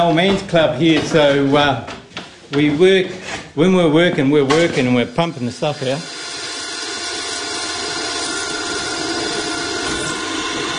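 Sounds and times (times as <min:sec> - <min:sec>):
speech: 0:00.0 - 0:06.2
power drill whirring: 0:06.0 - 0:10.7.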